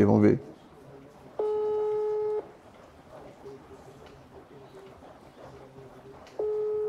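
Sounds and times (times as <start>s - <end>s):
speech: 0.0s - 0.5s
quiet noise: 0.0s - 6.8s
unanswered video call ringing: 1.4s - 2.6s, 6.4s - 6.8s.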